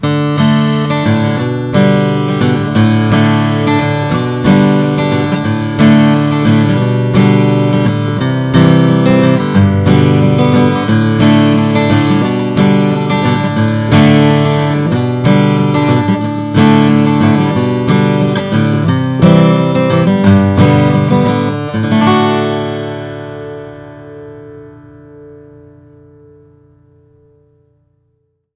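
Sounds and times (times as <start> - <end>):
Bourgeois DB Signature OM Adirondack acoustic guitar: 0.0 - 28.5.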